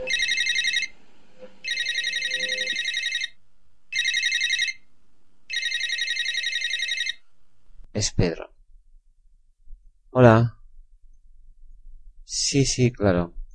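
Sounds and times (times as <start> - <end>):
telephone ringing: 0.0 - 0.9, 1.6 - 3.4, 4.0 - 4.8, 5.5 - 7.2
speech: 8.0 - 8.5, 10.2 - 10.6, 12.3 - 13.4.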